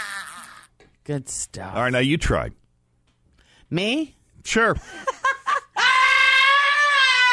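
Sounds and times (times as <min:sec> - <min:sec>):
person screaming in scream therapy style: 0:00.0 - 0:00.7, 0:05.8 - 0:07.3
speech: 0:01.1 - 0:02.6, 0:03.7 - 0:05.2.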